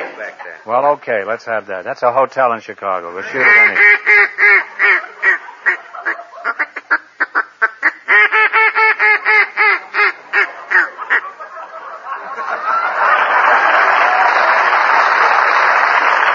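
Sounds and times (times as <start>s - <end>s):
laughter: 0.0s - 0.7s, 3.2s - 6.9s, 9.0s - 16.3s
speech: 0.2s - 4.6s
duck call blown in nasal quacks: 3.2s - 11.4s.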